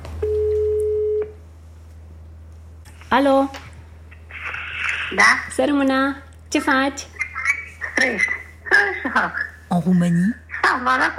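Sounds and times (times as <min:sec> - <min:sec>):
low electrical hum: 0:00.0 - 0:11.1
telephone ringback tone while a call is being placed: 0:00.2 - 0:01.2
speech: 0:03.1 - 0:03.6, 0:05.1 - 0:07.1, 0:08.0 - 0:08.4, 0:09.1 - 0:11.1.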